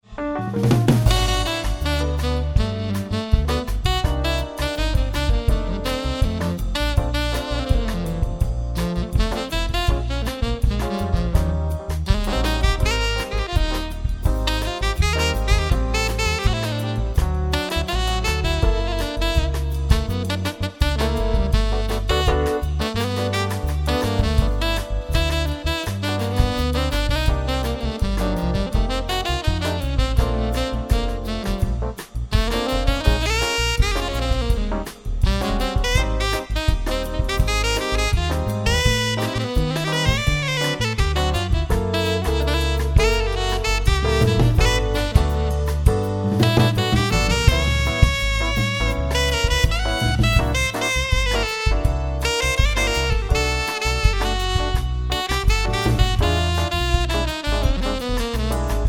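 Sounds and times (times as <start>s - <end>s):
sassy samba solo: 0.0s - 58.8s.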